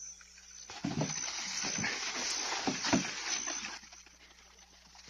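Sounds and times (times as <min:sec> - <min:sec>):
water splashing and clattering while fetching water by hand for home use: 0:00.7 - 0:03.9.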